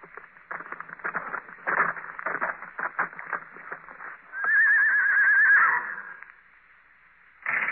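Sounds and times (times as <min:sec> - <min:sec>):
horse hooves clopping to a halt: 0:00.0 - 0:06.4
horse giving a loud wavering whinny: 0:04.3 - 0:06.2.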